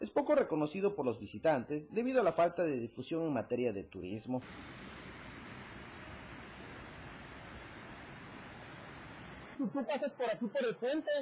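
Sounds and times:
speech: 0.1s - 4.9s, 9.6s - 11.2s
waterfall roaring: 4.4s - 9.6s.

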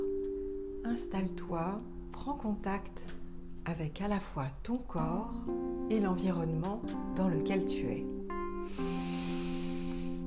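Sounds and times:
soft sustained musical drone: 0.0s - 10.2s
speech: 0.9s - 8.9s
deep breath during a Tai Chi Chuan breathing exercise: 8.6s - 10.2s.

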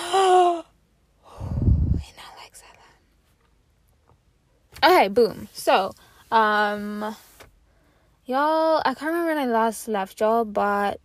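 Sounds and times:
deep breath drawn by a speaker pausing mid-talk: 1.2s - 2.0s
speech: 4.8s - 7.3s, 8.3s - 11.0s.

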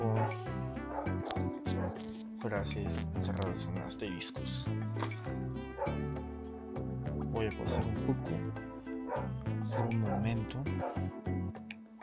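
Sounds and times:
neighbor's dog barking and yipping: 0.2s - 2.0s, 7.7s - 8.0s, 9.0s - 11.0s
speech: 2.5s - 6.1s, 7.3s - 11.7s.

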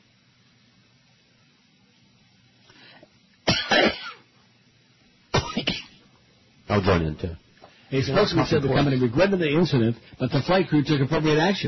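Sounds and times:
harsh rasping coughing: 3.4s - 4.3s, 5.3s - 6.0s
speech: 6.8s - 11.6s.

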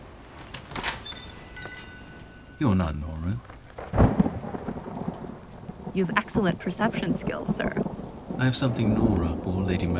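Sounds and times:
door opening: 0.4s - 1.9s
door giving a thin high creak: 0.4s - 2.3s
speech: 2.6s - 4.0s, 6.0s - 9.9s.

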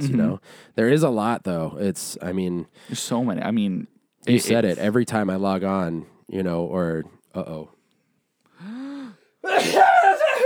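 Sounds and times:
speech: 0.0s - 7.8s, 9.4s - 10.0s
person sneezing: 9.5s - 10.4s.

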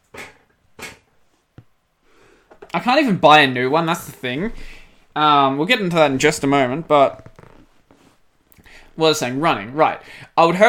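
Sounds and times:
speech: 2.8s - 7.3s, 9.0s - 10.6s
chair creaking and rustling: 5.9s - 8.6s.

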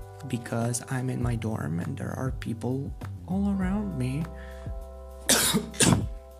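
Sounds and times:
speech: 0.2s - 4.6s, 5.5s - 6.1s
person coughing: 5.3s - 6.1s.

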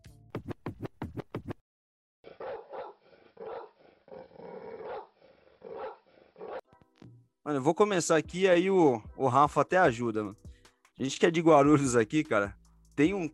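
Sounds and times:
sharp dog barks: 2.3s - 6.6s
speech: 7.5s - 10.4s, 11.0s - 13.3s.

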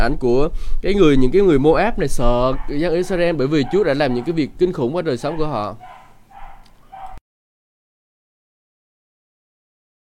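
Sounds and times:
speech: 0.0s - 6.0s
household dog barking: 2.4s - 7.2s.

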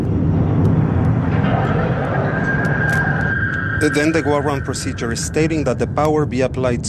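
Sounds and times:
Boeing 707 jet airliner low on fuel droning in flight: 0.0s - 6.8s
indistinct voices murmuring: 1.1s - 6.2s
speech: 3.8s - 6.8s.

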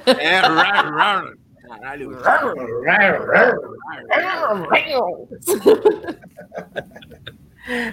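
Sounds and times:
laughter: 0.0s - 3.5s, 5.4s - 7.9s
speech: 0.0s - 7.9s
dog growling: 2.0s - 5.4s.

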